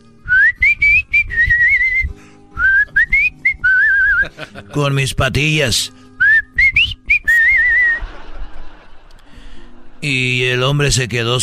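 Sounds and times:
person whistling a melody while ironing clothes: 0:00.2 - 0:04.4, 0:06.2 - 0:08.0
laughter: 0:04.1 - 0:05.0, 0:07.4 - 0:10.0
speech: 0:04.4 - 0:06.0, 0:10.0 - 0:11.4.

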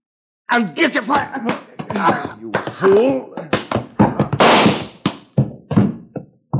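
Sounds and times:
speech: 0:00.5 - 0:03.6
gunshot in a radio western drama: 0:04.4 - 0:05.0.

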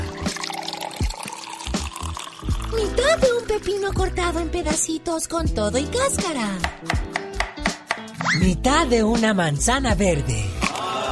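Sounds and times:
cup of water poured into blender: 0:00.0 - 0:04.1
speech: 0:02.8 - 0:07.1, 0:08.3 - 0:10.6.

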